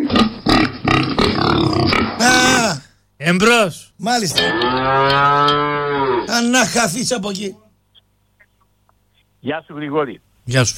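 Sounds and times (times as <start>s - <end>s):
person imitating pig grunts, snorts and squealing oink: 0.0s - 2.9s
speech: 3.2s - 7.6s, 9.4s - 10.7s.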